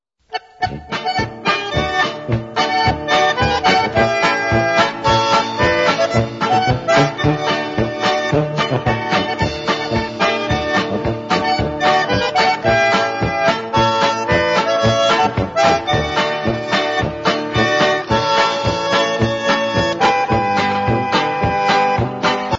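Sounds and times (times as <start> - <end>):
polka music: 0.3 - 22.5.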